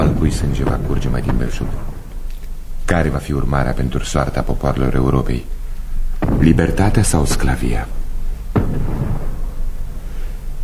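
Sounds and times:
cannon fire booming in battle: 0.0s - 2.9s, 6.0s - 10.2s
speech: 0.3s - 2.0s, 2.9s - 5.6s, 6.2s - 8.0s.

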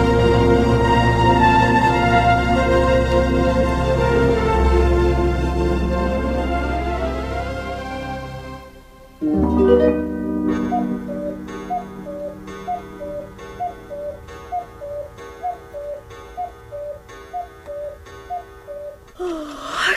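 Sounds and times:
brief resonant tonal swell: 0.0s - 19.0s
clock ticking in a steady tick-tock rhythm: 10.5s - 19.2s.

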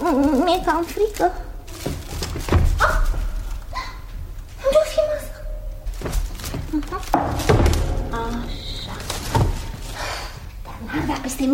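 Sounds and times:
creak-like rustle: 0.0s - 11.5s
speech: 0.1s - 1.8s
wooden door opening with heavy thunks: 1.8s - 3.4s, 5.9s - 10.1s.

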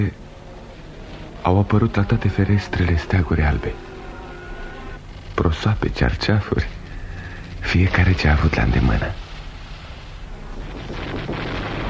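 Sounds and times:
speech: 0.0s - 0.2s, 1.4s - 3.9s, 5.4s - 6.8s, 7.6s - 9.2s
gunfire and shooting merged into a continuous heavy rumble: 9.5s - 11.8s.

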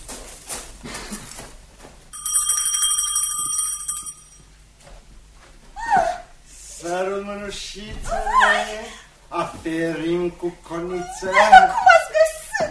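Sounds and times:
soft noise: 0.0s - 12.6s
small bell ringing: 2.1s - 4.5s
speech: 6.9s - 11.9s
laughter: 11.1s - 12.6s.

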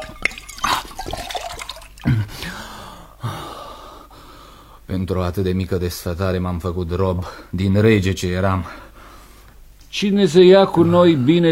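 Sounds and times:
water splashing and sloshing: 0.0s - 2.1s
person drinking water from a wooden bucket in noisy gulps: 0.0s - 2.5s
heavy gasping breaths: 2.1s - 4.9s, 8.6s - 9.6s
speech: 4.9s - 8.9s, 10.0s - 11.5s.

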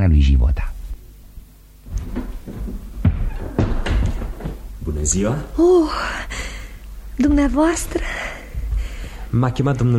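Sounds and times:
speech: 0.1s - 0.7s, 5.0s - 6.5s, 7.2s - 8.2s, 9.3s - 9.9s
heavy door thud: 1.9s - 4.8s.

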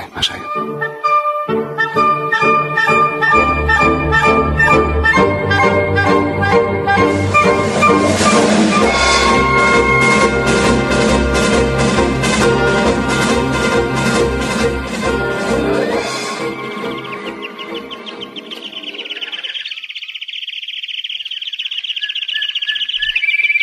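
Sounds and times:
dense music: 0.0s - 18.5s
speech: 0.2s - 1.0s
birds singing: 15.8s - 23.6s.

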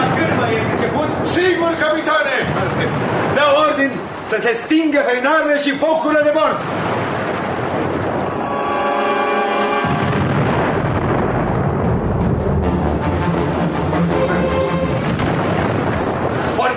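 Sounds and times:
cannon fire volleys: 0.0s - 4.3s, 6.5s - 9.2s, 9.8s - 13.1s, 13.8s - 16.6s
speech: 3.8s - 7.0s.

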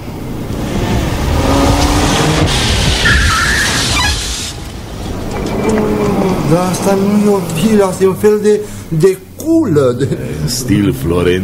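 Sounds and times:
car braking to a stop on a city street: 0.4s - 8.7s
car tyres skidding with a squeal: 2.8s - 7.0s
speech: 6.5s - 11.4s.

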